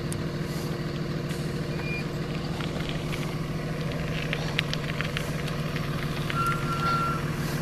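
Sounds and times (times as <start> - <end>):
school bus idling while picking up children in Garden City Boise: 0.0 - 7.6
short electronic beeps: 1.7 - 2.1, 6.3 - 7.3.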